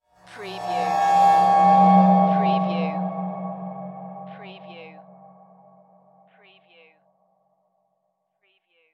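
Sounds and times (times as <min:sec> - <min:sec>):
production element cymbal: 0:00.3 - 0:05.8.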